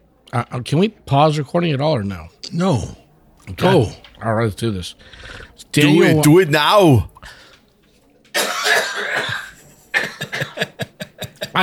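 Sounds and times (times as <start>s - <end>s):
speech: 0.3s - 7.4s
person coughing after inhaling whiskey: 8.4s - 10.8s
laughter: 9.2s - 11.6s.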